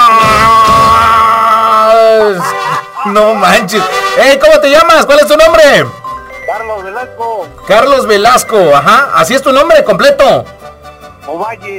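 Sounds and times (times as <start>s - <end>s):
man yelling imitating a Mexican grito: 0.0s - 5.7s
speech: 3.1s - 6.0s, 6.6s - 10.6s, 11.3s - 11.7s.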